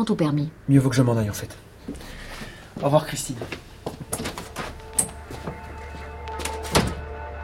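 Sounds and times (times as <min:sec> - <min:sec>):
speech: 0:00.0 - 0:02.2, 0:02.8 - 0:03.7
door closing with a solid thunk: 0:04.1 - 0:07.1.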